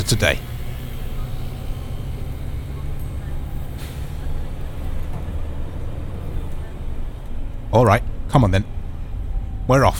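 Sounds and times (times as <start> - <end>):
London bus engine rumbling: 0.0 - 9.9
faint street noise: 0.0 - 9.9
speech: 0.1 - 0.5, 7.8 - 8.7, 9.7 - 9.9
London bus air brakes hissing: 3.6 - 4.7.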